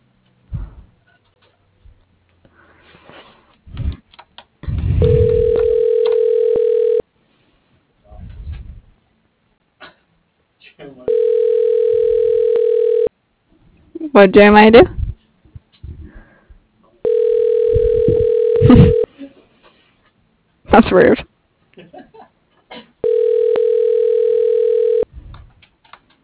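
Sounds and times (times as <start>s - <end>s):
loud steady electronic phone tone blaring from a handset: 5.0s - 7.0s, 11.1s - 13.1s, 17.0s - 19.1s, 23.0s - 25.1s
speech: 14.2s - 15.0s.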